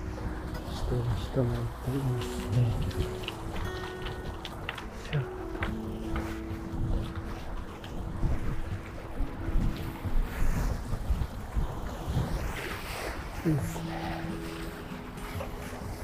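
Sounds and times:
gusty wind rumbling across the microphone: 0.0 - 16.0
ocean waves washing along the shore at the seaside: 0.0 - 16.0
speech: 0.9 - 3.8, 5.1 - 5.4, 13.5 - 13.8.

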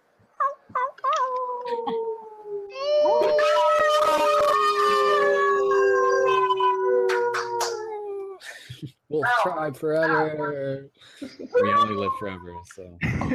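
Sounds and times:
people on an online call howling like wolves: 1.1 - 8.4
speech: 9.4 - 13.3.

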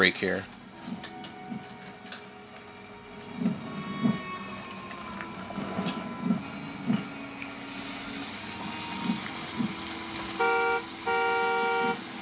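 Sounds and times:
steady mechanical rumble: 0.0 - 11.1
car horn honking: 10.4 - 12.0.

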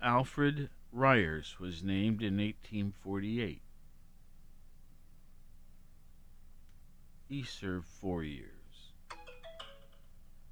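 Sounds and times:
speech: 0.0 - 3.6, 7.3 - 8.6
phone ringtone electronic chime melody: 9.1 - 10.2.

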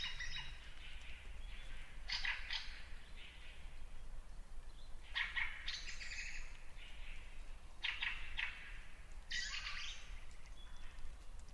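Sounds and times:
birdsong in a lakeside birch wood at dawn: 0.0 - 11.5.

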